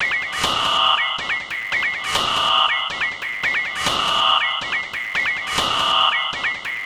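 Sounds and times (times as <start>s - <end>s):
machine sound effect loop with patterns: 0.0s - 6.8s.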